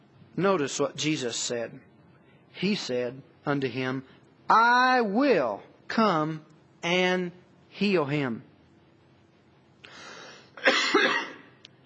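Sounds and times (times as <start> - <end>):
speech: 0.4 - 1.9, 2.6 - 8.5
person coughing: 10.6 - 11.6.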